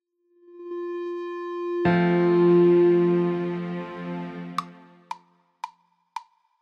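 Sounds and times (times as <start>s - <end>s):
lead melody: 0.6s - 5.1s.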